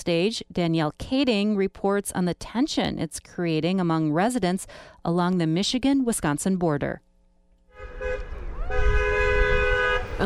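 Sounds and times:
speech: 0.0s - 7.1s
car horns honking in support of protesters on a street corner: 7.7s - 10.2s
low traffic rumble on a street: 7.7s - 10.2s.

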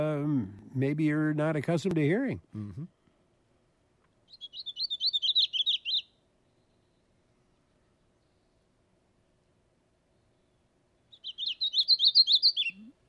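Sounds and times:
speech: 0.4s - 3.0s
painted redstart song: 4.2s - 8.7s, 10.1s - 12.9s.

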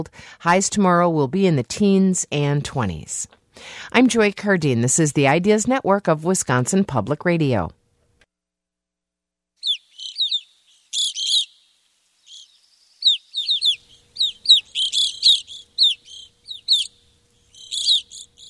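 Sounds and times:
speech: 0.0s - 7.8s
evening grosbeak calls of high clear chirps: 9.6s - 18.4s.

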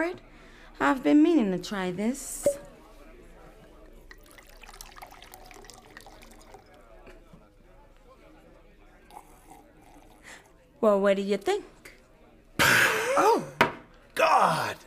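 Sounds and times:
speech: 0.0s - 2.7s, 10.8s - 11.8s, 12.7s - 13.6s, 14.2s - 14.8s
faint murmur: 0.0s - 14.8s
mixed drink of gin and dry vermouth pouring into a glass: 3.6s - 7.0s, 9.0s - 10.3s.

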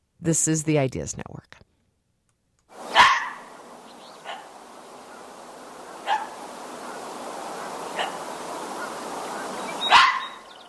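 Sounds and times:
speech: 0.2s - 1.7s
steady outdoor hiss: 2.7s - 10.6s
fox barking: 2.9s - 3.6s, 4.2s - 5.3s, 5.9s - 9.0s, 9.8s - 10.5s.

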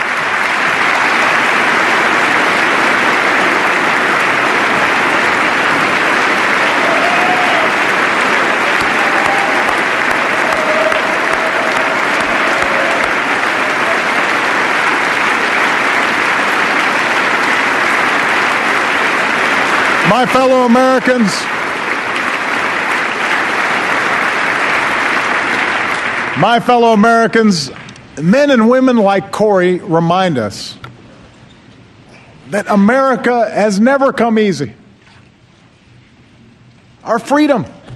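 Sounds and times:
legislators applauding in a chamber: 0.0s - 27.7s
speech: 20.2s - 21.5s, 26.4s - 30.8s, 32.5s - 34.8s, 37.0s - 37.8s.

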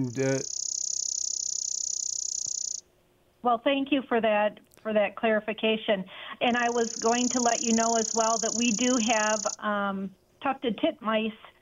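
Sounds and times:
speech: 0.0s - 0.6s, 3.4s - 11.5s
chipping sparrow trill: 0.2s - 2.8s, 6.4s - 9.6s.

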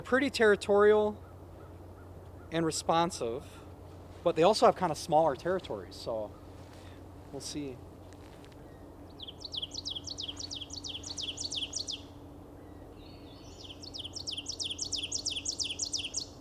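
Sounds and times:
speech: 0.0s - 1.2s, 2.5s - 3.6s, 4.2s - 6.4s, 7.3s - 7.9s
low steady hum: 0.0s - 16.3s
ovenbird song played from a phone app: 9.2s - 12.1s, 13.0s - 16.3s.

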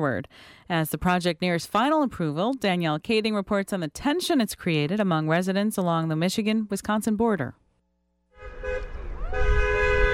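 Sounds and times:
speech: 0.0s - 7.6s
car horns honking in support of protesters on a street corner: 8.4s - 10.1s.

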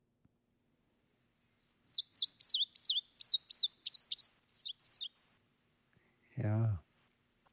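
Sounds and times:
Indigo Bunting singing fast paired notes: 1.4s - 5.1s
speech: 6.4s - 6.8s.

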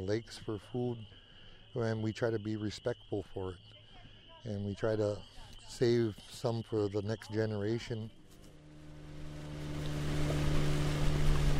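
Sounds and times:
speech: 0.0s - 3.8s, 4.4s - 8.2s
water noise: 7.2s - 11.5s
motorboat engine humming at low speed on a lake: 8.1s - 11.5s.

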